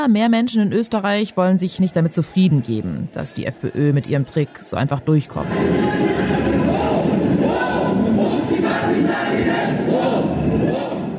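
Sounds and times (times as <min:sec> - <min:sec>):
speech: 0:00.0 - 0:06.8
thousands of demonstrators chanting slogans outdoors: 0:05.4 - 0:11.1.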